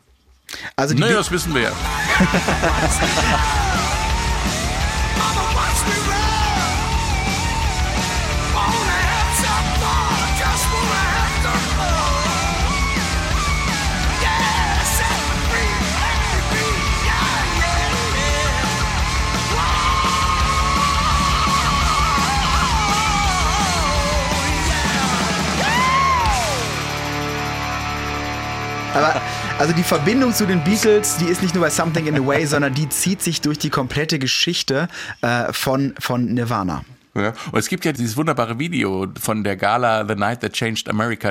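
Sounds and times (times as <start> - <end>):
speech: 0.8 - 4.6, 29.0 - 41.2
laughter: 0.9 - 6.6
man screaming in a rock song: 0.9 - 7.1, 8.5 - 12.7, 14.0 - 26.7
distorted guitars: 0.9 - 34.1
rock band playing: 1.0 - 33.9
pounding drums: 1.2 - 28.6.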